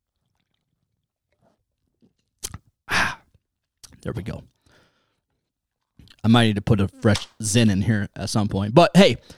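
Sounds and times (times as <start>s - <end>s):
slurping sip of beer: 0.0s - 3.2s
breathy exhale of satisfaction: 2.9s - 3.2s
speech: 4.0s - 4.6s, 6.2s - 9.3s.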